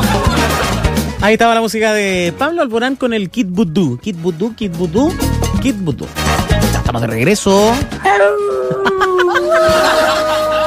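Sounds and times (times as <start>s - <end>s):
laughter: 0.0s - 1.2s, 8.4s - 10.6s
speech: 1.2s - 10.2s
wolves howling: 8.0s - 10.6s.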